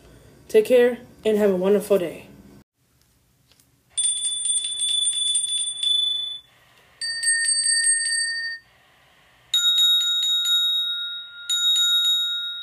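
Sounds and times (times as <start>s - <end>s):
speech: 0.5s - 2.3s
hand bell ringing: 4.0s - 8.6s, 9.6s - 12.6s.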